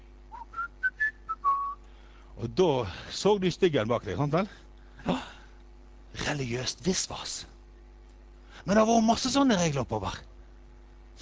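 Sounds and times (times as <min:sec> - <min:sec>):
person whistling notes: 0:00.3 - 0:01.8
speech: 0:02.4 - 0:05.3, 0:06.2 - 0:07.5, 0:08.6 - 0:10.3.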